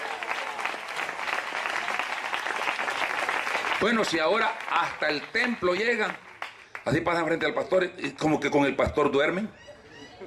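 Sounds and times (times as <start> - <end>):
audience clapping: 0.0 - 7.4
speech: 3.8 - 6.2, 6.8 - 9.7.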